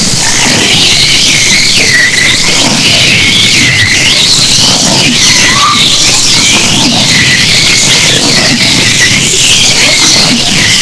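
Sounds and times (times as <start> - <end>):
constant loud background noise: 0.0 - 10.7
long-finned pilot whale whistles: 5.2 - 5.9.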